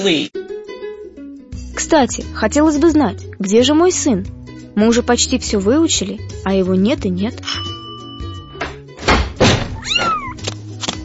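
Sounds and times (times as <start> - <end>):
speech: 0.0 - 0.4, 1.8 - 7.7
dull thumps and knocks: 8.6 - 10.2
kitten meowing: 9.8 - 10.4.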